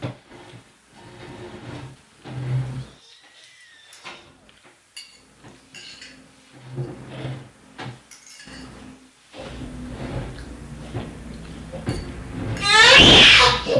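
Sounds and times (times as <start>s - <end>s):
heavy chair shoved and dragged across the floor: 0.0s - 3.0s, 6.4s - 13.7s.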